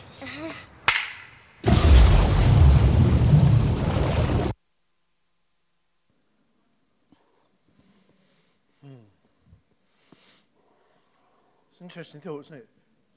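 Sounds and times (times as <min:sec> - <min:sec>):
starting gun crack: 0:00.9 - 0:04.6
speech: 0:11.9 - 0:12.8.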